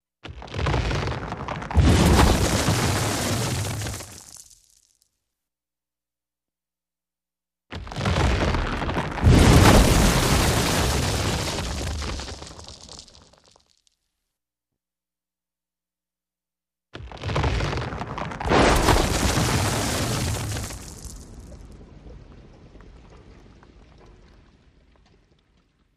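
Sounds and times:
explosive earth rock rumbling in earthquakes: 0:00.4 - 0:04.5, 0:07.8 - 0:13.5, 0:17.1 - 0:25.9.

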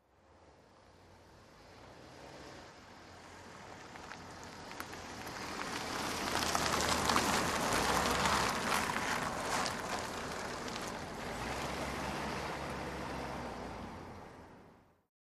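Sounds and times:
car passing by at medium speed: 0:01.1 - 0:14.9.

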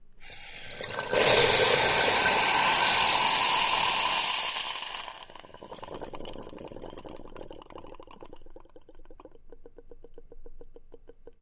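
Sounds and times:
intense steam hiss of water: 0:00.2 - 0:05.3.

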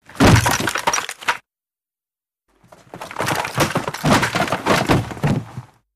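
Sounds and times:
body fall with weapon: 0:00.1 - 0:01.0, 0:02.8 - 0:05.7.

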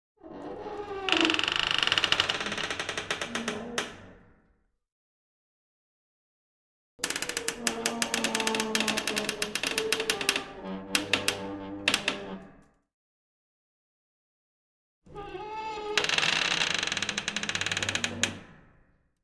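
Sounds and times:
heavy trapdoor creak: 0:00.3 - 0:04.1, 0:07.0 - 0:12.4, 0:15.2 - 0:18.6.

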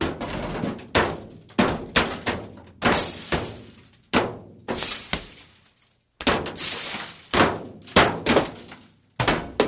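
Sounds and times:
metal hitting glass: 0:00.0 - 0:09.5.

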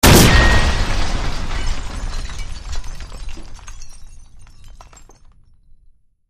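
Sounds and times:
explosion: 0:00.0 - 0:04.8
glass debris falling: 0:00.0 - 0:05.7.

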